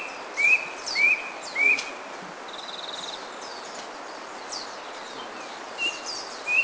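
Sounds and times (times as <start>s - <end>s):
steady ambient hiss: 0.0s - 6.6s
brush cuckoo whistles on Kitanglad in the Philippines: 0.4s - 2.0s.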